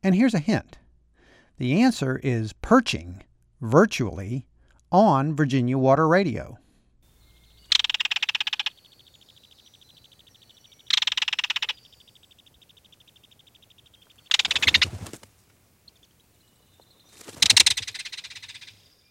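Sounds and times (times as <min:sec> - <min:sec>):
speech: 0:00.0 - 0:00.8, 0:01.6 - 0:06.6
belted kingfisher main call, twittering rattle: 0:07.6 - 0:09.8, 0:10.7 - 0:15.2, 0:17.3 - 0:18.8.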